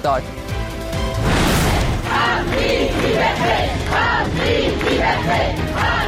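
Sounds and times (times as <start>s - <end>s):
brief burst of noise: 1.2s - 2.4s
large crowd of students chanting in unison at the University of Tehran: 1.2s - 6.0s.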